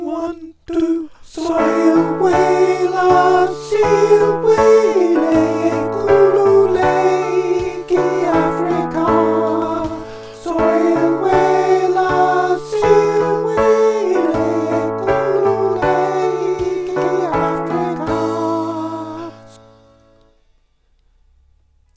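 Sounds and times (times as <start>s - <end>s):
alto voice: 0.0s - 19.8s
drums: 5.4s - 12.4s.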